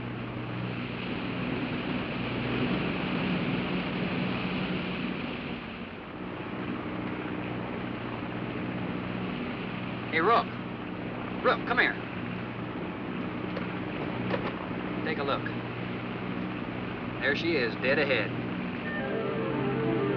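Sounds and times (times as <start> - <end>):
aircraft engines droning in flight: 0.0 - 20.1
speech: 10.2 - 10.6, 11.4 - 12.0, 17.3 - 18.4.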